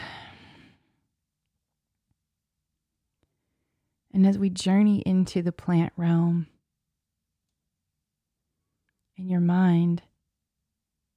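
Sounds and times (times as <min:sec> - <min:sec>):
deep breath: 0:00.0 - 0:01.0
speech: 0:04.2 - 0:06.5, 0:09.2 - 0:10.1.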